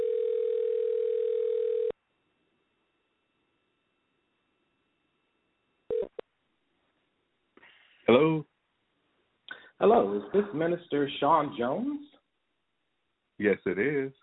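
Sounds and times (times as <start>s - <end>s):
telephone ringback tone: 0.0s - 2.0s, 5.9s - 6.2s
speech: 8.1s - 8.5s, 9.8s - 12.2s, 13.4s - 14.2s.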